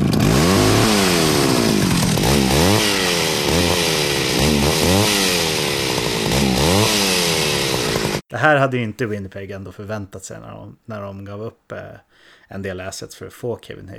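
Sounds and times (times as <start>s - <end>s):
chainsaw revving: 0.0s - 8.2s
speech: 8.4s - 13.9s.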